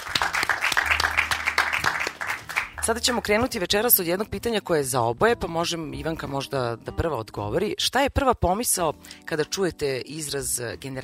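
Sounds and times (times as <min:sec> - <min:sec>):
audience applause at a live talk event: 0:00.0 - 0:03.3
speech: 0:02.9 - 0:11.0.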